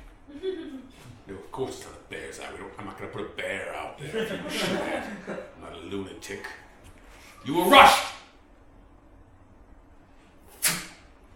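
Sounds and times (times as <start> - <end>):
speech: 1.6 - 6.6, 7.4 - 8.1
laughter: 4.0 - 5.6
arrow striking target and splitting another arrow: 10.6 - 11.0.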